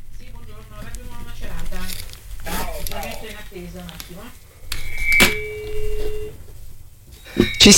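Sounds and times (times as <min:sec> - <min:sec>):
radio show voices talking: 0:00.1 - 0:04.4, 0:07.6 - 0:07.7
telephone ringing with a short electronic tone as a radio show calls its guest: 0:04.7 - 0:06.5, 0:07.1 - 0:07.7.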